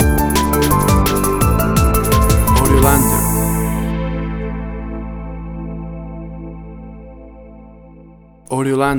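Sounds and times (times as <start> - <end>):
bouncy drum and bass rhythm stinger: 0.0 - 3.9.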